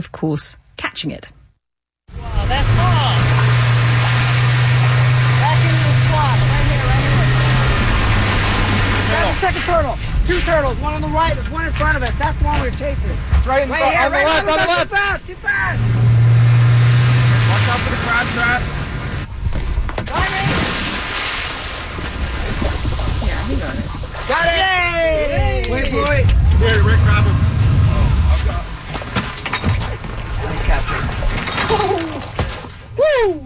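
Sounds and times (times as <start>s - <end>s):
speech: 0.0s - 1.4s, 9.4s - 16.2s, 17.7s - 18.8s, 23.5s - 27.4s, 30.6s - 32.3s, 33.0s - 33.4s
motorboat engine droning at sea: 2.1s - 19.3s, 25.7s - 31.2s
rushing wind at sea: 2.1s - 31.6s
splashing water at sea: 2.2s - 14.5s, 15.8s - 19.3s, 20.0s - 32.9s.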